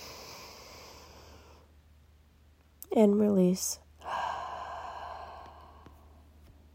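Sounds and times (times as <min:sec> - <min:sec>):
person breathing in deeply: 0:00.0 - 0:01.7, 0:04.0 - 0:06.3
speech: 0:03.0 - 0:03.8.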